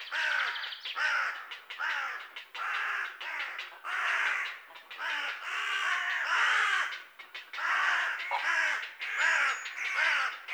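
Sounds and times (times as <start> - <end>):
carrion crow Corvus corone hoarse caws: 0.1 - 10.5.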